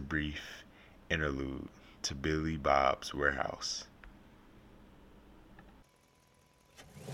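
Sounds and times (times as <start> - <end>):
speech: 0.1 - 3.9
car engine starting and revving: 6.4 - 7.1.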